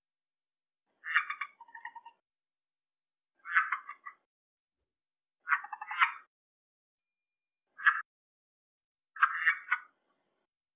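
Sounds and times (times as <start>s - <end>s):
red-eyed tree frog uttering short clucking pulsed notes: 1.0s - 2.2s, 3.4s - 4.2s, 5.4s - 6.3s, 7.8s - 8.1s, 9.2s - 10.0s.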